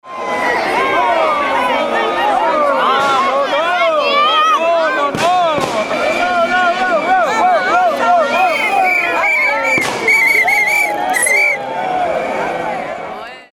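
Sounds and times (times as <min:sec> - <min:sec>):
crowd cheering: 0:00.1 - 0:04.7, 0:05.5 - 0:13.4
firecrackers popping: 0:08.4 - 0:11.4.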